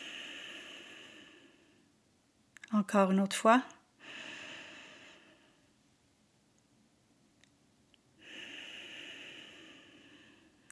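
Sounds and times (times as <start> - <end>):
slow deep breathing, inhaling and exhaling: 0.0 - 2.0, 4.0 - 5.7, 8.2 - 10.6
speech: 2.7 - 3.8.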